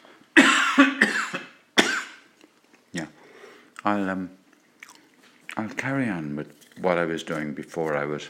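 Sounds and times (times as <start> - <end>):
harsh hacking coughs: 0.4 - 2.3
speech: 3.9 - 4.4, 5.6 - 8.2.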